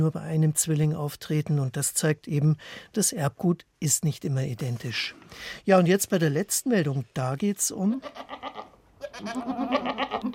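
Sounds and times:
speech: 0.0 - 10.3
goats bleating: 8.0 - 10.3.

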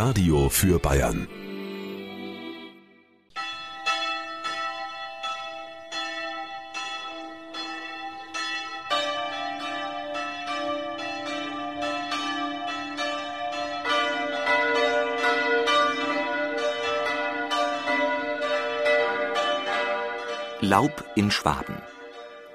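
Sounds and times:
speech: 0.0 - 1.5, 20.8 - 21.9
church bells ringing a full Sunday noon peal: 0.0 - 2.2, 3.3 - 22.5.

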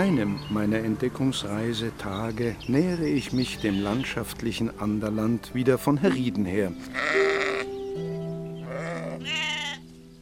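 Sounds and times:
speech: 0.0 - 7.3
sheep bleating in a pasture: 6.8 - 7.7, 8.6 - 9.8.

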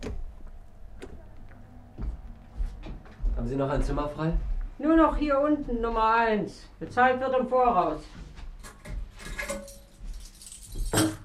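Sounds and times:
speech: 3.4 - 8.2
metallic hotel room keys jingling and clinking as handed over: 8.6 - 11.2.

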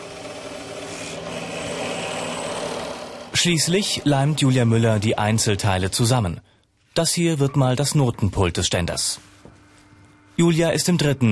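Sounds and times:
tools sawing, planing and drilling wood: 0.0 - 4.0
faint motor-like hum: 0.0 - 6.0, 9.0 - 11.2
speech: 3.4 - 9.3, 10.4 - 11.2.

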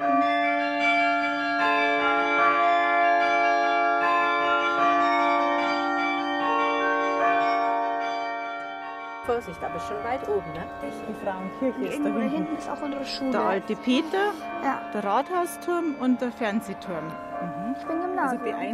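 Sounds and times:
carillon bells playing a slow melody: 0.0 - 18.7
speech: 9.4 - 18.7.

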